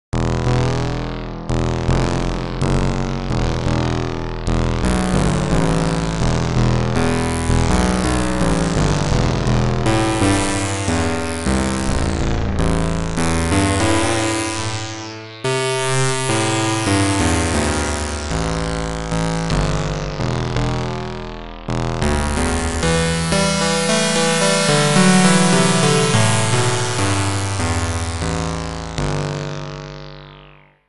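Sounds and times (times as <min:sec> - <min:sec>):
Moog Polymoog synthesizer: 0:00.2 - 0:30.8.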